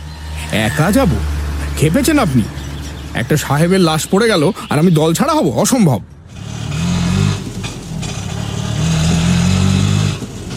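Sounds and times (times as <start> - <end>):
auto rickshaw engine on the road in Chandigarh: 0.0 - 10.5
speech: 0.5 - 6.1.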